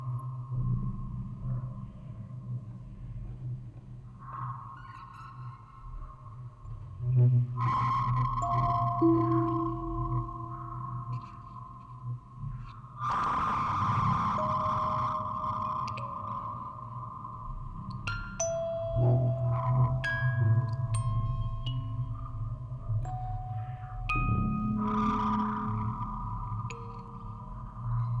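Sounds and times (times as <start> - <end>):
field recording: 0.0 - 28.1
music box quartet playing: 8.4 - 11.2, 18.0 - 27.9.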